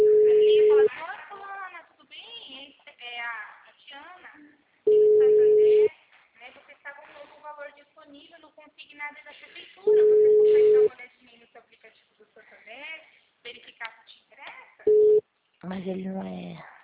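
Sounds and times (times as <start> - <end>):
telephone call ringback tone: 0.0 - 0.9, 4.9 - 5.9, 9.9 - 10.9, 14.9 - 15.2
people talking: 0.0 - 15.0.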